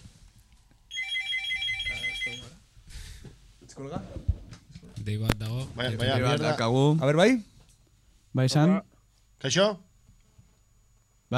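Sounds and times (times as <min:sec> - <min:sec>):
telephone bright electronic ringtone: 0:00.9 - 0:02.5
speech: 0:03.8 - 0:04.3, 0:05.0 - 0:07.5, 0:08.4 - 0:09.9.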